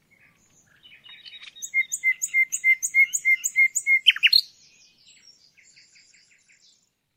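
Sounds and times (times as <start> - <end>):
common nightingale song: 0.0 - 7.1.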